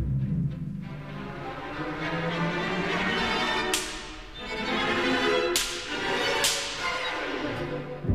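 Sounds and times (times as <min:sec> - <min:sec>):
sustained orchestral playing: 0:00.0 - 0:08.1
sharp loud orchestral whip cracks: 0:03.4 - 0:07.5.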